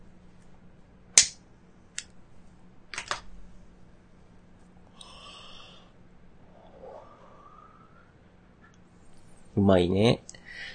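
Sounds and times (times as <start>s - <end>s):
lighter clicks lighting a cigarette: 1.2s - 1.4s
breathy hiss of smoking a cigarette: 4.9s - 8.2s
soft drawn-out exhale of cigarette smoke: 4.9s - 8.2s, 10.4s - 10.7s
speech: 9.6s - 10.3s.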